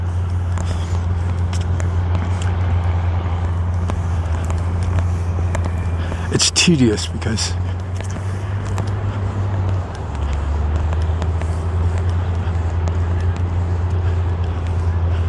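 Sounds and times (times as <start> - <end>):
heavy construction equipment engine rumble: 0.0 - 15.2
speech: 6.5 - 7.8.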